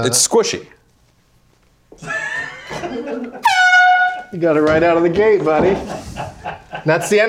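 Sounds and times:
speech: 0.0 - 0.8, 4.3 - 6.0, 6.8 - 7.2
laughter: 2.0 - 3.6, 5.4 - 7.2
loud brassy air horn blasts: 3.4 - 4.4.

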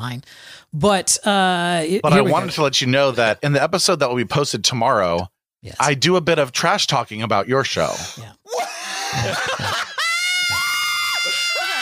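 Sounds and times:
speech: 0.0 - 9.9
people yelling: 8.5 - 11.8
laughter: 8.7 - 10.7.

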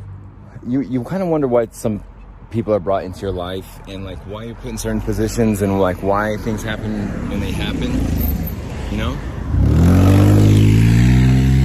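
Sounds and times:
speech: 0.6 - 9.3
overheating Dodge Durango engine revving loudly outside an AutoZone store in summer: 9.5 - 11.6.

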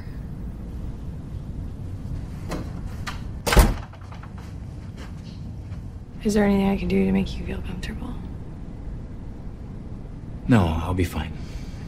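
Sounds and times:
low steady room rumble: 0.0 - 11.8
door pushed shut with a solid thud: 3.4 - 4.2
speech: 6.2 - 8.3, 10.5 - 11.5.

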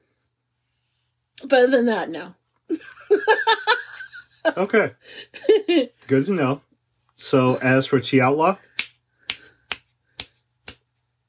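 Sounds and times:
speech: 1.4 - 8.7
finger snaps: 8.8 - 11.2.

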